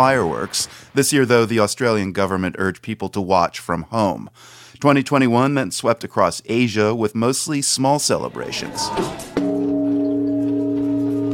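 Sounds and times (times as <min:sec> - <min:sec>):
speech: 0:00.0 - 0:09.4
Japanese temple bell struck at New Year in Tokyo: 0:08.6 - 0:11.3.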